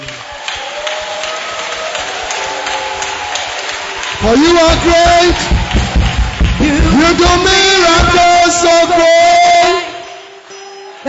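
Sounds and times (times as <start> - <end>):
audience clapping: 0.0 - 11.0
speech: 4.2 - 5.6, 6.7 - 9.4.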